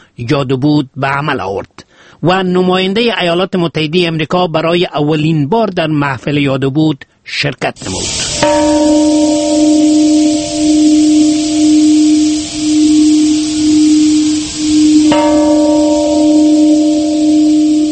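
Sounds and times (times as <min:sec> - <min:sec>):
speech: 0:00.2 - 0:10.1
peace bell tolling at an atomic bomb memorial ceremony in Hiroshima: 0:08.4 - 0:17.9.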